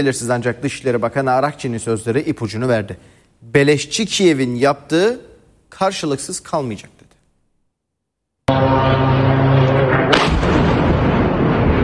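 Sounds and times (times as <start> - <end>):
speech: 0.0 - 7.0
explosion from a strike on a ship: 8.5 - 11.8
second sharp blast: 8.5 - 11.8
sustained rumbling roar of an explosion: 8.5 - 11.8.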